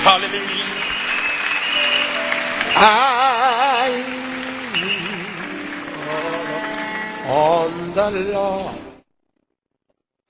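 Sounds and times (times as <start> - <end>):
audience clapping hands: 0.0 - 7.5
speech: 0.1 - 0.8, 2.7 - 4.2, 7.3 - 8.8.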